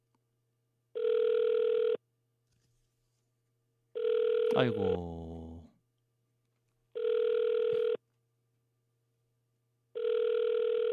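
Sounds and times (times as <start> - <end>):
unanswered phone ringback tone: 1.0 - 2.0, 4.0 - 4.9, 7.0 - 8.0, 10.0 - 10.9
speech: 4.6 - 5.2.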